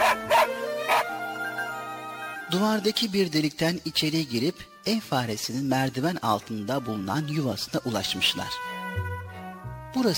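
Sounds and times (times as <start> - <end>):
dog barking: 0.0 - 1.1
speech: 2.5 - 8.8, 10.0 - 10.1.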